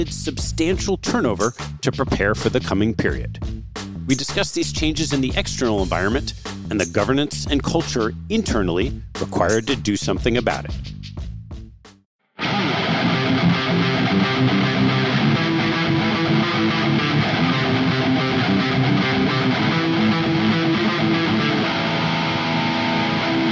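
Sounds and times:
speech: 0.0 - 11.0
heavy metal riff on a distorted electric guitar: 12.4 - 23.4.

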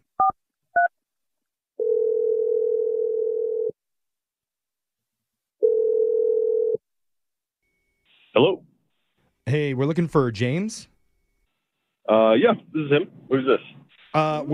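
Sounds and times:
phone ringing tone: 1.8 - 3.8, 5.6 - 6.8
speech: 9.8 - 10.9, 12.1 - 14.5.

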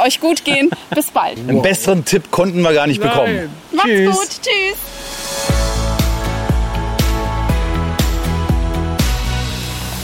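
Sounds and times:
speech: 0.0 - 4.9
upbeat background music with thumping bass-drum beat and sustained chords at a beach bar: 5.3 - 10.0.

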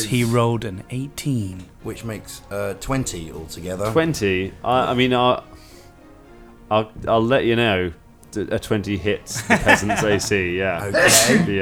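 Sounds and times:
speech: 0.0 - 5.6, 6.7 - 11.6
laughter: 0.0 - 11.6
person sneezing: 10.9 - 11.6.

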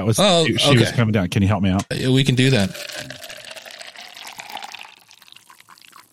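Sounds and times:
speech: 0.0 - 3.1
coffee pouring into a cup: 2.4 - 6.1.

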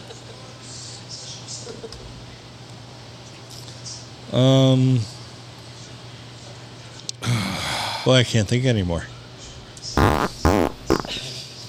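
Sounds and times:
speech: 4.3 - 5.2, 8.0 - 9.1
short buzzy fart noises with wobbling pitch: 10.0 - 11.3.

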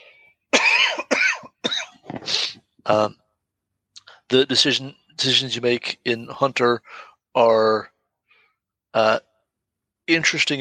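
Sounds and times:
person coughing harshly: 0.6 - 2.6
speech: 2.9 - 3.2, 4.3 - 7.9, 8.9 - 9.3, 10.1 - 10.6.

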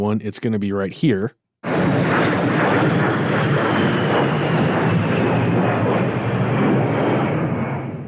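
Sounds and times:
speech: 0.0 - 5.8
A-10 Warthog jet aircraft flying overhead: 1.6 - 8.0.

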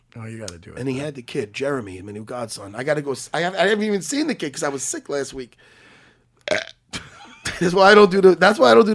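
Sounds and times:
speech: 0.2 - 5.9, 7.6 - 8.9
person burping into the microphone: 6.4 - 7.1.

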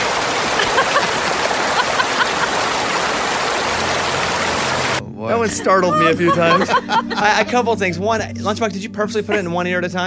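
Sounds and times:
steady rush of falling water like a waterfall: 0.0 - 5.0
laughter: 0.4 - 3.1, 5.4 - 9.8
speech: 5.3 - 10.0.

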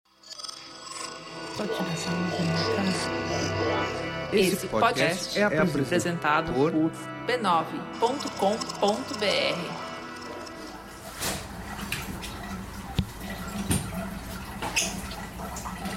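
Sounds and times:
speech: 1.6 - 9.9
sharper drips and knocks: 8.3 - 15.9
shower water falling onto a floor and running into a drain: 10.1 - 15.9.

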